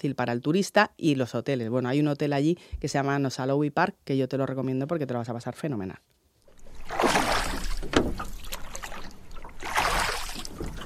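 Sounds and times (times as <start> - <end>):
speech: 0.0 - 6.2
oars rowing a boat in water: 6.5 - 10.8.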